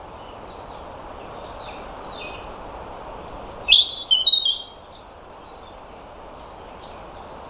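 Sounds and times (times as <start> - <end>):
European robin singing: 0.0 - 2.5, 3.1 - 7.4
low noise: 0.0 - 7.4.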